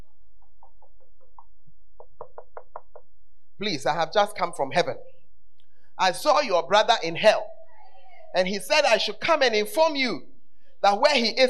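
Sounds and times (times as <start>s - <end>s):
knocking on a door: 2.0s - 3.0s
speech: 3.6s - 5.1s, 6.0s - 7.5s, 8.3s - 11.4s.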